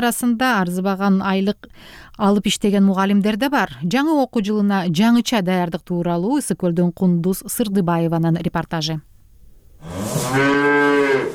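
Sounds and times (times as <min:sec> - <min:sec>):
speech: 0:00.0 - 0:09.1, 0:09.8 - 0:11.0
calf mooing in a farmyard: 0:09.8 - 0:11.3.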